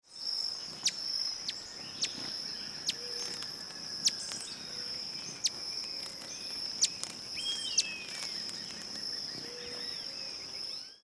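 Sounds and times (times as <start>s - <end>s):
Green-throated Mango bird: 0.1s - 11.0s.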